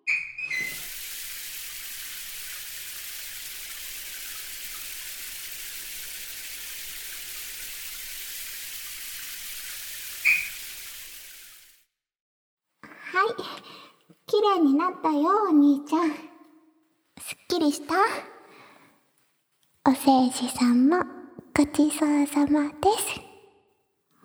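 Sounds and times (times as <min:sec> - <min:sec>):
shower water spraying while rinsing off soap: 0:00.1 - 0:11.9
speech: 0:14.6 - 0:16.3, 0:17.6 - 0:18.3, 0:20.0 - 0:23.2.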